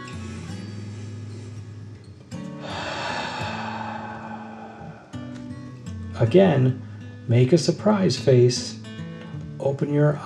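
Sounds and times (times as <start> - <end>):
long deep breath in and out during a guided relaxation exercise: 2.5 - 5.9
speech: 6.2 - 8.8, 9.6 - 10.2.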